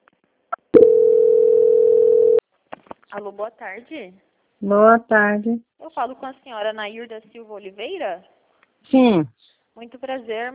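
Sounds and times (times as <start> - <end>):
steady telephone line tone during a call transfer: 0.7 - 2.4
speech: 3.1 - 10.5.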